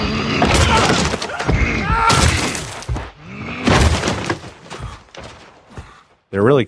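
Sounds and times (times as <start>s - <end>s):
giant's head smashing against a wall and an archer: 0.4s - 4.6s
shattering crumbling debris: 0.5s - 5.7s
speech: 6.3s - 6.6s.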